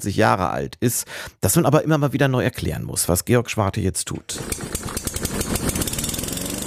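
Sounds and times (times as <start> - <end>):
speech: 0.0 - 4.8
lawn mower engine running: 4.3 - 6.6.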